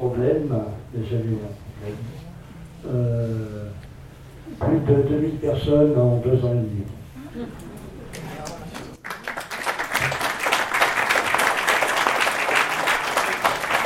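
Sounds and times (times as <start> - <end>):
speech: 0.0 - 3.9, 4.5 - 7.7
audience applause: 8.1 - 13.8.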